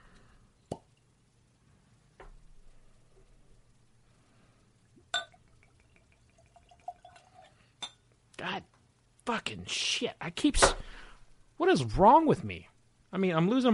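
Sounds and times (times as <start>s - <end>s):
bourbon plopping and dripping: 4.8s - 7.7s
glass clinking: 5.1s - 8.1s
speech: 9.3s - 10.9s, 11.6s - 13.7s.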